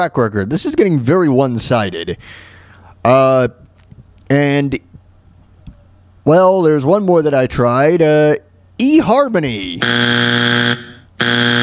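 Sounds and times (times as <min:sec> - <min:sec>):
speech: 0:00.0 - 0:03.6, 0:04.3 - 0:04.9, 0:06.3 - 0:11.6
loud harsh buzzer blasts: 0:09.8 - 0:11.6.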